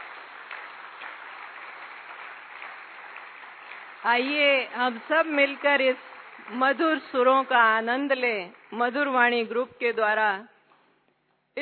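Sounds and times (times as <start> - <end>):
audience applause at a silver jubilee celebration: 0.0 - 7.5
speech: 4.0 - 10.5.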